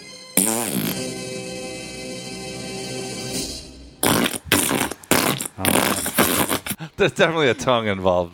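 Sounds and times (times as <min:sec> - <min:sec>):
long sputtering fart sound: 0:00.4 - 0:01.1, 0:04.0 - 0:06.8
speech: 0:07.0 - 0:08.3.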